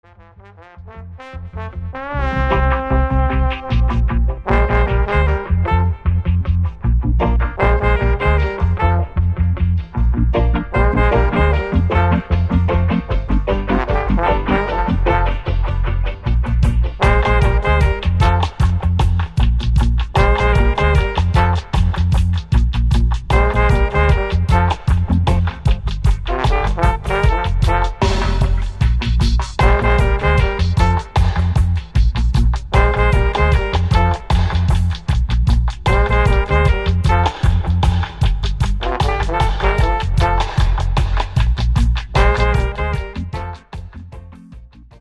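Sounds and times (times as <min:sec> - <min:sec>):
reggae horns: 0:00.0 - 0:44.9.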